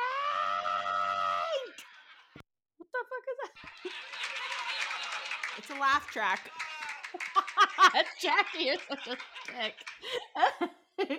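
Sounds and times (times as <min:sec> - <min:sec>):
woman screaming: 0:00.0 - 0:01.7
laughter: 0:01.2 - 0:02.4, 0:03.5 - 0:11.1
speech: 0:05.7 - 0:07.2, 0:07.8 - 0:11.1.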